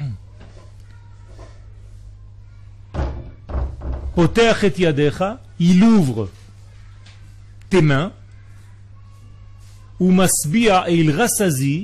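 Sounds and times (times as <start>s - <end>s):
faint murmur: 0.0s - 11.8s
low electrical hum: 0.0s - 11.8s
door being shut: 2.9s - 4.4s
speech: 4.2s - 6.4s, 7.7s - 8.2s, 10.0s - 11.8s.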